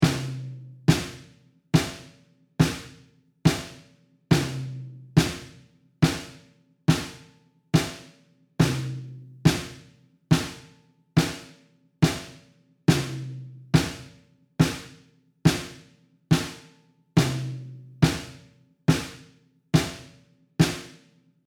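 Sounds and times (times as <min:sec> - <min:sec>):
snare drum recorded close and with overheads: 0:00.0 - 0:21.1.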